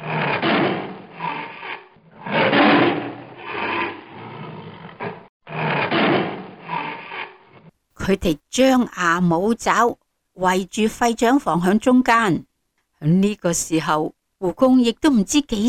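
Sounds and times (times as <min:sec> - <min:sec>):
tigers roaring: 0:00.0 - 0:07.7
speech: 0:08.1 - 0:15.6.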